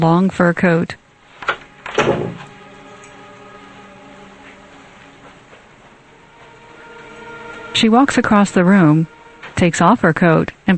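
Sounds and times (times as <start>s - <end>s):
speech: 0.0s - 1.0s, 7.8s - 10.7s
door creaking open: 1.4s - 3.1s.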